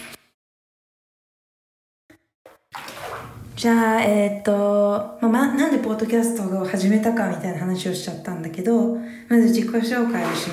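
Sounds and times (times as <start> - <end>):
water splash: 2.5 - 3.6, 9.9 - 10.5
water pouring into a bathtub: 2.7 - 3.4, 10.0 - 10.5
speech: 3.6 - 10.5.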